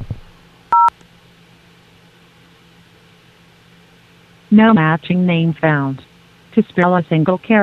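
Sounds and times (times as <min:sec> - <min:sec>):
faint phone line hum: 0:00.0 - 0:07.6
touch-tone phone keypad DTMF beeps: 0:00.7 - 0:00.9
speech: 0:04.5 - 0:07.6.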